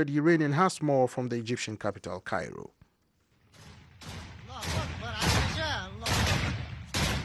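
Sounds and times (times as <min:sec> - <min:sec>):
speech: 0:00.0 - 0:02.8
gunfire bursts in exchange of fire south and east of Tripoli in Libya: 0:03.4 - 0:07.2.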